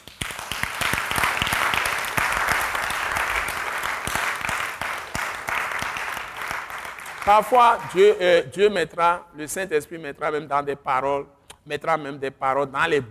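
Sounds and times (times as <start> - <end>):
church congregation applauding with dense steady clapping: 0.0 - 8.3
speech: 7.3 - 13.0.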